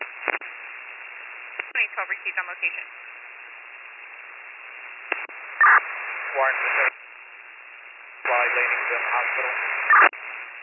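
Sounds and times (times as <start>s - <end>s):
brief louder radio squelch: 0.0s - 3.1s, 3.7s - 7.0s, 8.2s - 10.6s
low hiss: 0.0s - 10.6s
radio static crackling: 0.0s - 10.6s
garbled band-limited radio transmission with unintelligible voice: 1.6s - 2.9s, 5.1s - 7.0s, 8.2s - 10.6s
speech: 1.8s - 3.2s, 5.6s - 6.9s, 8.6s - 10.1s.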